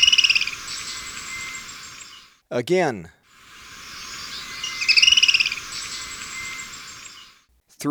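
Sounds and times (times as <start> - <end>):
black-throated tody-tyrant trilling in Ecuador: 0.0 - 2.3, 3.4 - 7.4
speech: 2.5 - 3.2.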